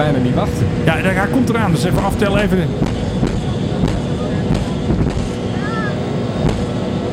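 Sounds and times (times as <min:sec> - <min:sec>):
speech: 0:00.0 - 0:03.2
MD-83 airliner engine roar during takeoff: 0:00.0 - 0:07.1
MD-83 airliner engine compressor stall bangs during takeoff: 0:02.3 - 0:05.4, 0:06.4 - 0:06.8.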